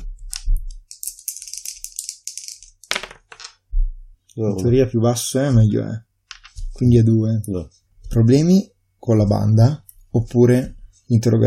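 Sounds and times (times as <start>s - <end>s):
two dice rattling and clattering across a hard surface: 0.6s - 3.6s
speech: 4.4s - 6.1s, 6.8s - 11.4s.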